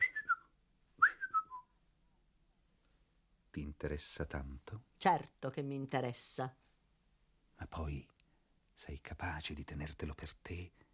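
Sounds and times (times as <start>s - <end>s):
person at the table whistling: 0.0s - 1.7s
speech: 3.6s - 6.6s, 7.6s - 8.1s, 8.8s - 10.8s.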